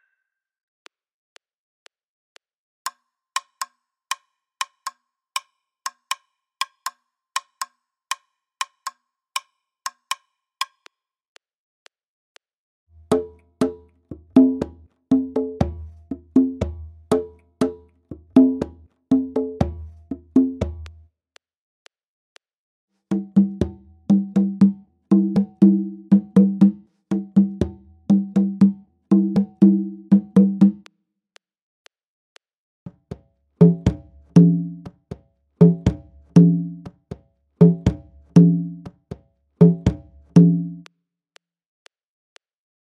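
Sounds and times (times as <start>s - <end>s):
Latin American rumba guaguanco rhythm at 120: 13.1s - 21.0s, 23.1s - 30.9s, 33.6s - 35.0s, 35.6s - 37.0s, 37.6s - 39.0s, 39.6s - 40.9s.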